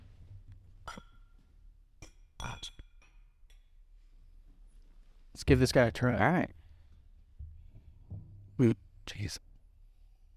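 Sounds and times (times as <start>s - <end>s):
glasses clinking together in a toast: 0.8s - 1.4s, 2.0s - 3.7s
speech: 5.4s - 6.6s, 8.6s - 9.5s.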